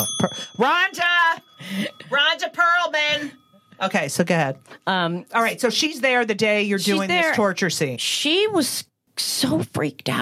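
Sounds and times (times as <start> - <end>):
bright metallic bell ding: 0.0 - 4.8
speech: 0.0 - 10.2.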